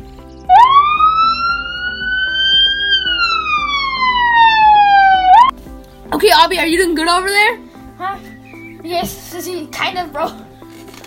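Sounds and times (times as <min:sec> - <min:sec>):
loud ambulance siren wailing: 0:00.5 - 0:05.5
speech: 0:06.4 - 0:08.3, 0:08.9 - 0:10.4.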